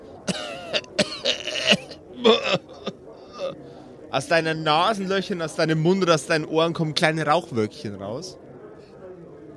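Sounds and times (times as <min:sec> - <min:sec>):
harsh rasping coughs: 0:00.2 - 0:03.6
speech: 0:00.3 - 0:01.1, 0:04.1 - 0:08.4.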